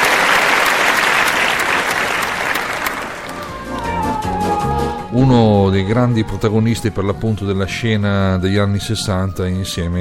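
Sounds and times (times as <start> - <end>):
audience applause in memory of a 1960s Italian singer: 0.0 - 4.9
musical tone: 3.2 - 9.9
speech: 5.2 - 9.9.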